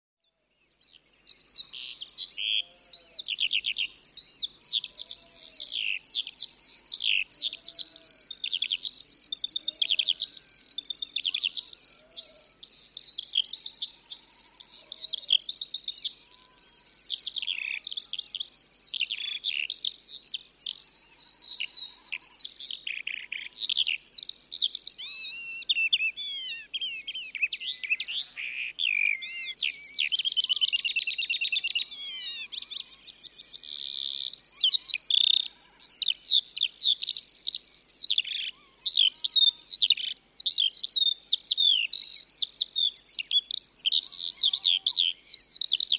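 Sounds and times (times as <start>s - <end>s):
skylark singing: 0.5s - 45.9s.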